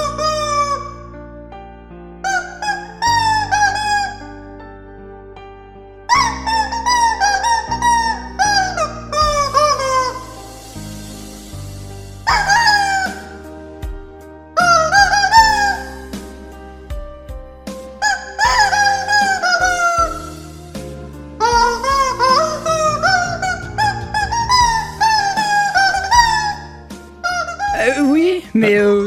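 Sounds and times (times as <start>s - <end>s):
rubber chicken toys squawking a song cover: 0.0s - 1.0s, 2.3s - 4.4s, 6.1s - 10.6s, 12.2s - 13.4s, 14.6s - 16.1s, 18.0s - 20.5s, 21.4s - 28.1s
steady low backing music: 0.0s - 29.0s.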